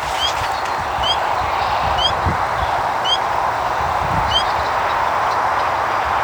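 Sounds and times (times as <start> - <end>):
Pseudacris crucifer calling: 0.0 - 5.9.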